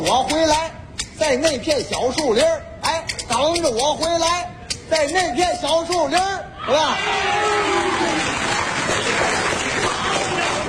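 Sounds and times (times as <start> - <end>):
speech: 0.1 - 2.7, 3.3 - 8.3
crowd noise: 1.5 - 10.6
audience applause: 7.6 - 10.6.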